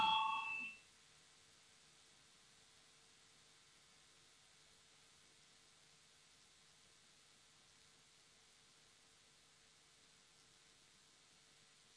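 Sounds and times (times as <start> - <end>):
parliamentary voting bell electronic tone: 0.0 - 0.8.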